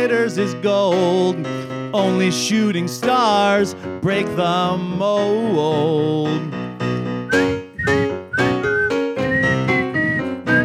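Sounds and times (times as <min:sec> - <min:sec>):
speech: 0:00.0 - 0:06.7
person whistling a bright lilting melody: 0:07.3 - 0:10.6.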